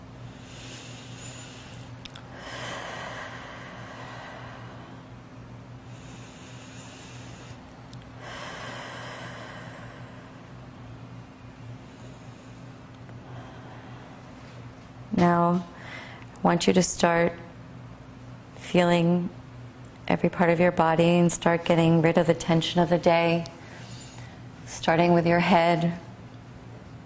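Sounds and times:
low steady hum: 0:00.0 - 0:27.0
slow deep breathing during a relaxation exercise: 0:00.3 - 0:10.8, 0:11.5 - 0:14.8, 0:15.7 - 0:16.3, 0:23.6 - 0:24.5
speech: 0:15.2 - 0:15.7, 0:16.4 - 0:17.4, 0:18.7 - 0:19.4, 0:20.1 - 0:23.5, 0:24.8 - 0:26.0.

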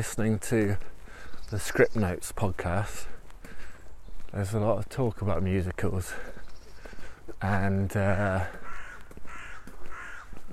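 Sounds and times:
speech: 0:00.0 - 0:00.9, 0:01.5 - 0:03.1, 0:04.3 - 0:06.4, 0:07.4 - 0:08.6
crow cawing: 0:08.5 - 0:10.5.

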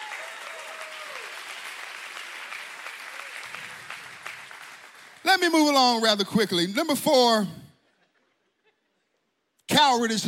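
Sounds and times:
faint whoops or voices: 0:00.0 - 0:01.4
audience applause: 0:00.0 - 0:05.5
speech: 0:05.4 - 0:07.6, 0:09.8 - 0:10.2.

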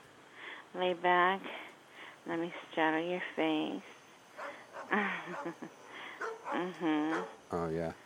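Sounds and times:
speech: 0:00.7 - 0:01.6, 0:02.2 - 0:04.0, 0:04.9 - 0:05.8, 0:06.5 - 0:08.0
dog barking: 0:04.4 - 0:05.5, 0:06.2 - 0:07.4.

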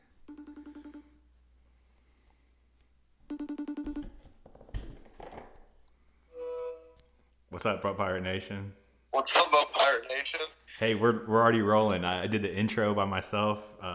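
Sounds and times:
outgoing phone call ringing with pulsing electronic ring tone: 0:00.3 - 0:01.2, 0:03.3 - 0:04.3
speech: 0:07.6 - 0:09.6, 0:10.3 - 0:13.9.

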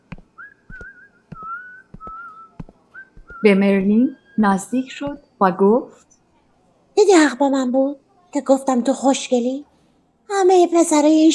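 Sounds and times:
sharp percussive taps or clicks: 0:00.0 - 0:04.0
person whistling a simple tune softly: 0:00.4 - 0:03.5
speech: 0:03.4 - 0:06.1, 0:07.0 - 0:09.7, 0:10.3 - 0:11.3.

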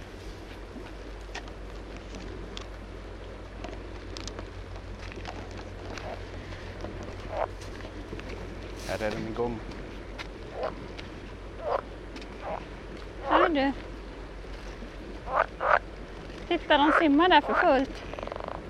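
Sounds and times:
steady low outdoor background: 0:00.0 - 0:18.6
pool frogs croaking at a pond by the sea: 0:05.3 - 0:08.1, 0:10.4 - 0:13.8, 0:15.2 - 0:16.0, 0:16.6 - 0:18.6
speech: 0:08.9 - 0:09.8, 0:17.0 - 0:18.1.

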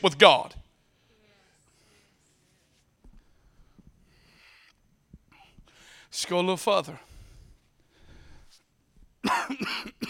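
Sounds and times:
speech: 0:00.0 - 0:00.6, 0:06.1 - 0:07.1
soft breathy noise: 0:00.8 - 0:06.2, 0:06.9 - 0:09.1
harsh coughs: 0:09.2 - 0:10.0.

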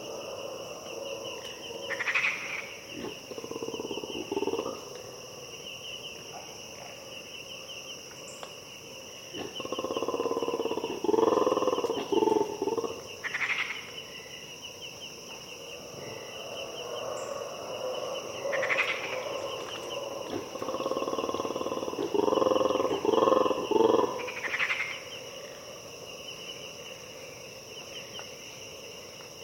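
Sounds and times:
colobus monkeys giving deep rolling territorial roars at dawn: 0:00.0 - 0:04.9, 0:09.3 - 0:13.5, 0:16.6 - 0:25.0
brief frog calls: 0:00.0 - 0:05.1, 0:09.2 - 0:14.3, 0:16.0 - 0:26.9
steady high insect chorus in the Harenna Forest: 0:00.0 - 0:29.4.

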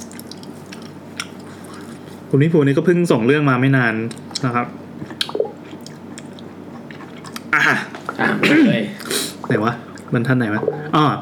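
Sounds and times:
wet chewing and squishing mouth sounds from someone eating: 0:00.0 - 0:02.3, 0:04.0 - 0:08.2, 0:09.0 - 0:11.0
speech: 0:02.3 - 0:05.1, 0:07.6 - 0:11.1.

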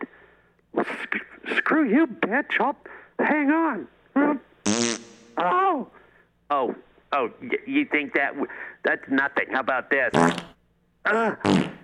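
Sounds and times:
speech: 0:01.1 - 0:04.8, 0:05.4 - 0:10.5, 0:11.1 - 0:11.7
farting: 0:04.7 - 0:05.4, 0:10.1 - 0:10.6, 0:11.4 - 0:11.8.

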